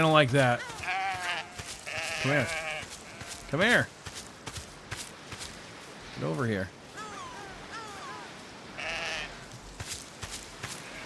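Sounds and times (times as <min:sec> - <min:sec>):
speech: 0:00.0 - 0:00.8, 0:02.2 - 0:02.6, 0:03.5 - 0:04.0, 0:06.2 - 0:06.8
shuffling: 0:00.0 - 0:06.1, 0:06.8 - 0:11.0
sheep bleating: 0:00.6 - 0:03.5, 0:07.0 - 0:09.5, 0:10.7 - 0:11.0.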